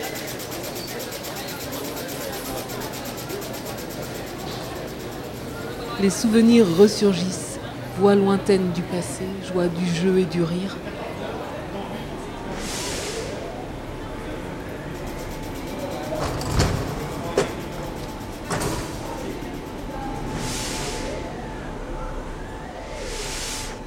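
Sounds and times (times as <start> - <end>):
mechanical rumble of trains in a railway station: 0.0 - 23.8
speech: 6.0 - 7.4, 8.0 - 11.0
hissing bursts of air: 12.5 - 13.5, 20.3 - 21.4, 23.0 - 23.8.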